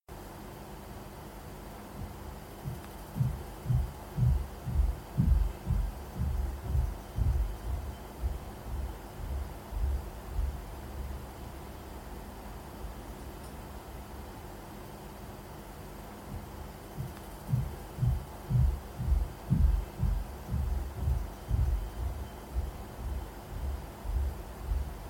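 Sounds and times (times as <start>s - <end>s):
footsteps in a bedroom with a concrete ceiling: 2.0s - 10.6s, 16.4s - 24.9s.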